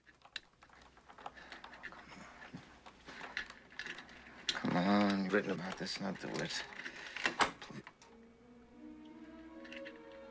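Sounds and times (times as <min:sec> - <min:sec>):
door lock being picked open with a hairpin: 0:00.0 - 0:08.1
speech: 0:04.9 - 0:06.8.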